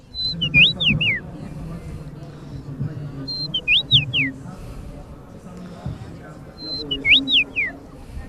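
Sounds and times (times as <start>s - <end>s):
common rosefinch flute-like whistling song: 0.0s - 1.3s, 3.2s - 4.4s, 6.6s - 7.8s
low murmuring background: 0.0s - 8.2s.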